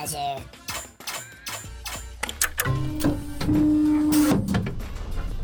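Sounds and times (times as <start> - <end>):
speech: 0.0 - 0.6
converted dishwasher machine clicks and clanks on starting up: 0.7 - 4.7
converted dishwasher machine whirring after being plugged in: 0.7 - 5.3.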